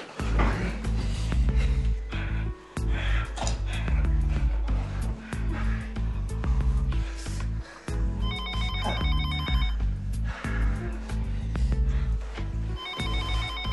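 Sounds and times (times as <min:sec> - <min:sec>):
steady music: 0:00.0 - 0:13.7
telephone bell ringing: 0:08.2 - 0:09.8, 0:12.8 - 0:13.7.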